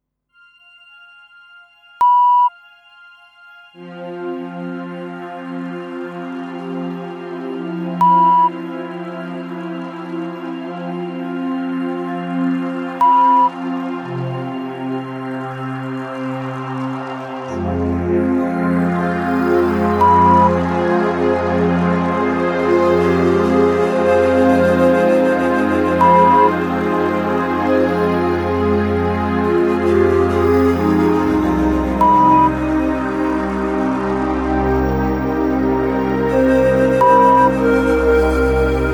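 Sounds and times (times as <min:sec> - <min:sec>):
relaxing meditative background music at 70 bpm: 0:00.4 - 0:38.9.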